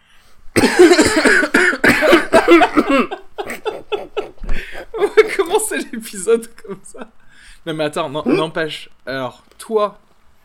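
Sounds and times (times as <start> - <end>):
person coughing in a rough hacking fit: 0.6 - 5.5
laughter: 2.1 - 7.2
speech: 6.1 - 10.0.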